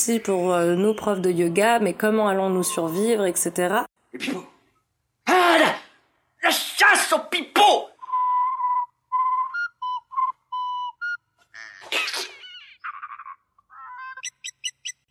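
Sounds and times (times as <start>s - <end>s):
speech: 0.0s - 4.5s, 6.4s - 7.9s
person whistling a tune: 8.0s - 11.2s.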